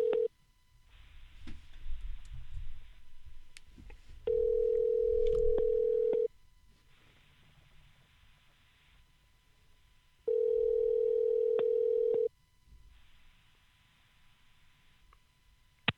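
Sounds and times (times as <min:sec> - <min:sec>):
telephone ringback tone of an outgoing phone call: 0:00.0 - 0:00.3, 0:04.3 - 0:06.3, 0:10.3 - 0:12.3.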